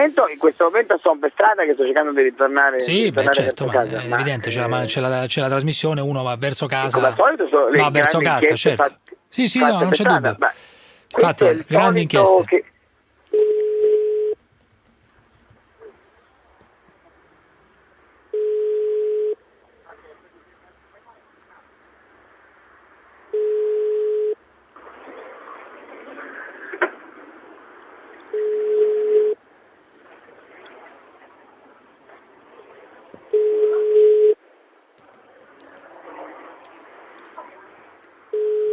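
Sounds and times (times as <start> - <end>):
speech: 0.0 - 12.7
ringback tone of an unanswered outgoing phone call: 13.3 - 14.4, 18.3 - 19.4, 23.3 - 24.4, 28.3 - 29.4, 33.3 - 34.4, 38.3 - 38.7.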